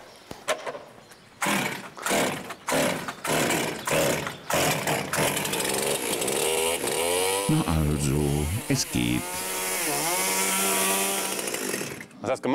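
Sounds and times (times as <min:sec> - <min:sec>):
chainsaw engine sputtering, starting and revving: 0:01.4 - 0:07.6, 0:09.0 - 0:12.2
speech: 0:07.5 - 0:09.5, 0:12.2 - 0:12.5.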